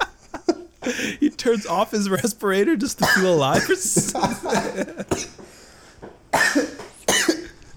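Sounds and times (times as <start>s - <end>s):
speech: 0.8s - 5.4s
person coughing harshly: 3.0s - 5.5s, 6.3s - 7.6s.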